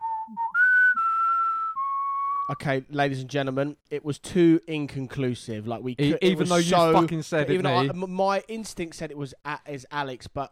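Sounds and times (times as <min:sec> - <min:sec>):
whistle blowing: 0:00.0 - 0:02.6
speech: 0:02.5 - 0:10.5.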